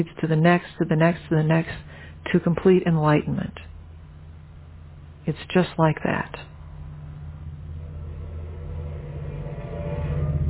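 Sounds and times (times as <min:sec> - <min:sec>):
speech: 0:00.0 - 0:03.7, 0:05.3 - 0:06.5
deep train engine hum: 0:00.0 - 0:10.4
train rumbling past outside: 0:06.5 - 0:10.4.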